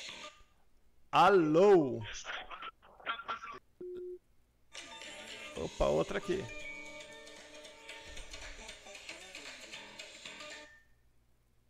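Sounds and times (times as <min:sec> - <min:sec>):
speech: 0:01.1 - 0:02.4, 0:05.6 - 0:06.6
telephone busy signal as a call fails to connect: 0:03.8 - 0:04.2.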